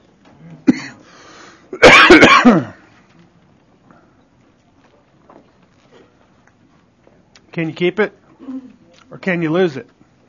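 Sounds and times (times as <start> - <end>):
person clearing throat with something caught in the throat: 0.6 - 1.0, 1.7 - 2.9
person coughing harshly with something caught in the throat: 0.6 - 1.0, 1.7 - 2.8
speech: 1.8 - 2.7, 7.6 - 8.2, 9.1 - 10.0.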